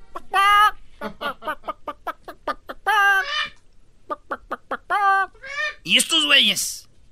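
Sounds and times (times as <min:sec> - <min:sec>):
chickens clucking: 0:00.0 - 0:05.8
rooster squawking: 0:02.7 - 0:03.6, 0:04.2 - 0:05.9
speech: 0:05.9 - 0:06.8.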